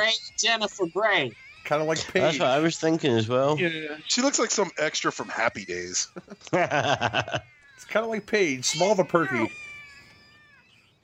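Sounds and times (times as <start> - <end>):
speech: 0.0 - 9.6
cat yowling with bending pitch: 0.0 - 11.0
laughter: 1.7 - 8.3.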